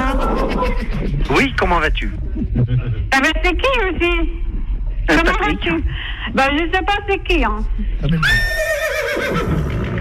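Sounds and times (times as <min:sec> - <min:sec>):
steady noise: 0:00.0 - 0:09.9
speech: 0:00.7 - 0:04.4, 0:05.1 - 0:09.7
horse neighing with a shrill whinny: 0:08.2 - 0:09.9.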